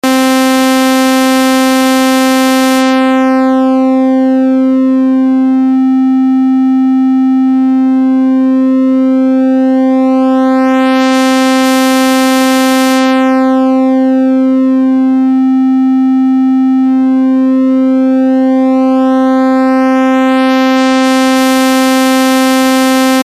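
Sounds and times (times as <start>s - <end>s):
V-Synth sawtooth tone: 0.0s - 23.2s.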